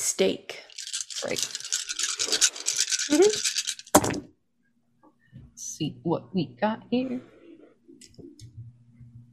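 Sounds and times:
speech: 0.0s - 0.6s, 1.2s - 1.6s, 3.1s - 3.6s, 5.8s - 7.4s
handful of dice shaken and rolled for a tabletop role-playing game: 0.7s - 4.2s.

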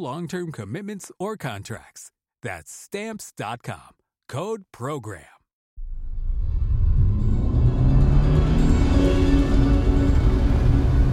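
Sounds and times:
speech: 0.0s - 5.4s
car driving fast along a winding dirt road: 6.2s - 11.1s.

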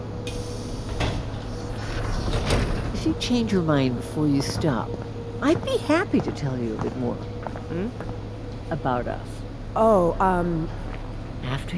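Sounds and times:
uptown Q subway train doors sliding shut: 0.0s - 3.8s
steady rumbling subway station noise: 0.0s - 11.7s
subway train doors clunking and thudding: 0.3s - 3.3s
speech: 3.0s - 10.8s, 11.4s - 11.7s.

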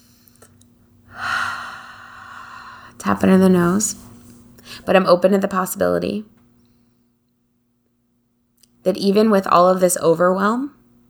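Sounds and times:
deep breath during a calming exercise for anxiety: 1.1s - 3.1s, 4.0s - 4.9s
speech: 3.0s - 4.1s, 4.8s - 6.4s, 8.8s - 10.8s.

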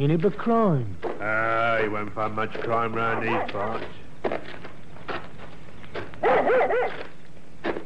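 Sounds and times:
speech: 0.0s - 4.6s, 6.2s - 7.0s
dog barking excitedly: 3.1s - 3.6s, 6.2s - 7.1s.

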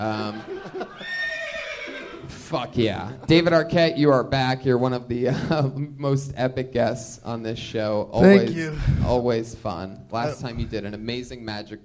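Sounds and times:
laughter: 0.0s - 1.4s, 5.2s - 5.9s
horse whinny: 0.9s - 2.4s
speech: 1.9s - 11.8s.

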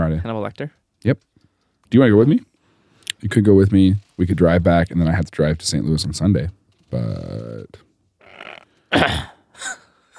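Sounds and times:
speech: 0.2s - 1.3s, 1.9s - 2.5s, 3.2s - 7.8s, 8.4s - 9.8s
person clearing throat in raspy bursts: 8.3s - 9.5s.

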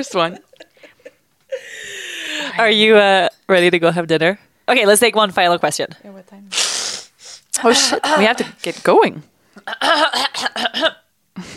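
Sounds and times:
speech: 0.0s - 0.5s, 2.6s - 6.7s, 7.6s - 11.5s
person clearing throat: 7.6s - 8.5s, 9.6s - 11.0s.

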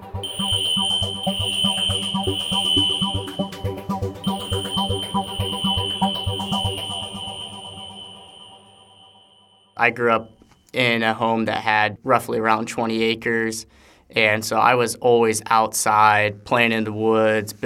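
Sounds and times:
fire alarm high-pitched tone: 0.0s - 10.5s
speech: 9.8s - 17.6s.

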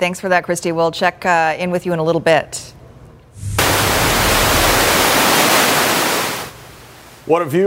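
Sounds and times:
speech: 0.0s - 2.8s, 7.3s - 7.6s
low rumble: 3.4s - 5.3s
wind-whipped ocean waves crashing on shore: 3.4s - 7.2s.

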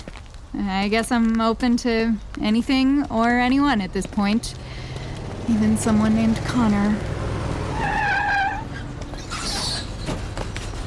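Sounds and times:
speech: 0.6s - 4.6s, 5.5s - 7.1s
heavy bus engine rumble: 3.7s - 10.8s
bus brakes squealing to a stop: 7.8s - 10.8s.

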